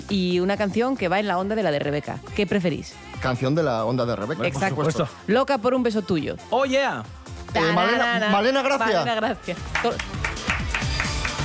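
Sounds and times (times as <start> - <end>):
speech: 0.1 - 10.2
single person clapping alone: 9.7 - 11.4.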